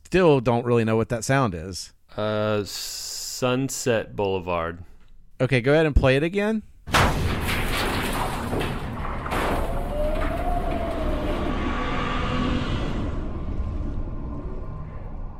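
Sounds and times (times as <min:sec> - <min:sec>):
speech: 0:00.1 - 0:07.2
elevator machinery rumbling in a theme-park ride's elevator shaft: 0:07.4 - 0:12.5
faint whining tone: 0:09.5 - 0:15.3.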